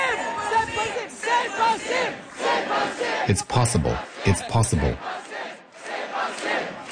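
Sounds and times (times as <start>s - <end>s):
large crowd chanting a short phrase in unison: 0.0s - 6.8s
speech: 1.8s - 5.2s.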